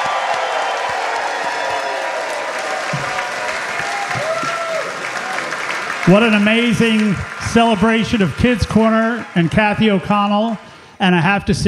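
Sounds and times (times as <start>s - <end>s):
crowd whooping: 0.0s - 10.6s
large audience applauding: 0.0s - 10.8s
speech: 6.1s - 11.6s.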